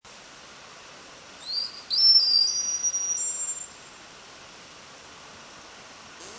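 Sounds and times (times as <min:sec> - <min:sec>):
soft hiss: 0:00.1 - 0:06.3
white-beaked dolphin flat whistles in Skjálfandi Bay Iceland: 0:01.4 - 0:03.7.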